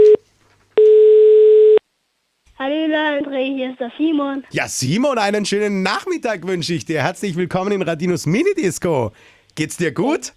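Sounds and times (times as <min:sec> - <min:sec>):
telephone ringing tone beeps while placing a call: 0:00.0 - 0:00.2, 0:00.8 - 0:01.8
speech: 0:02.9 - 0:10.3.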